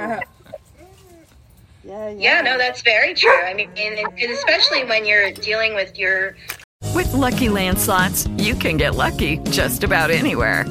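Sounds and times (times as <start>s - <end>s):
dog yelping and whining: 0.0s - 1.4s, 3.2s - 5.5s
speech: 1.9s - 10.6s
dog barking: 3.2s - 4.9s.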